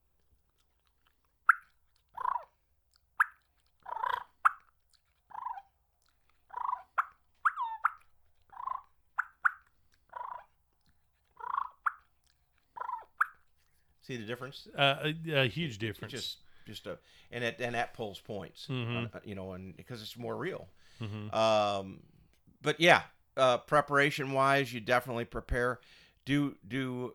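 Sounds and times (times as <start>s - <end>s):
competition turkey call clucks and rolling purrs: 1.5s - 2.6s, 3.2s - 13.7s
speech: 14.1s - 27.1s.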